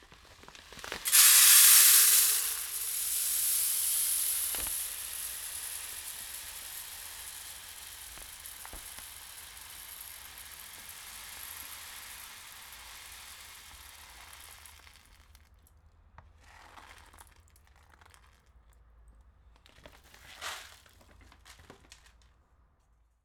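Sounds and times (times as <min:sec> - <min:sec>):
small seeds pouring from a sack of rice bags: 0:00.0 - 0:15.4.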